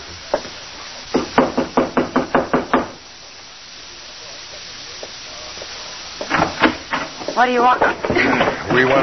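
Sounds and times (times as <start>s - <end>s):
sharp knocks on a wooden door: 1.1s - 3.0s
speech: 7.4s - 9.0s.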